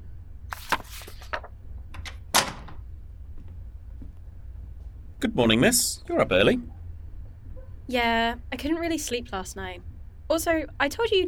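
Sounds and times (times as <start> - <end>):
glass door opening with rattling scraping clicks: 1.9 - 3.0
clack of the door latch or frame: 2.0 - 2.9
speech: 5.2 - 6.8, 7.9 - 11.2.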